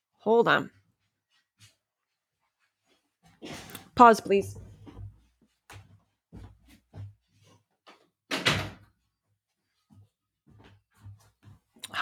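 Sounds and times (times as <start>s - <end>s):
speech: 0.2s - 0.8s, 4.0s - 4.6s
door shutting with a thud: 8.3s - 8.9s.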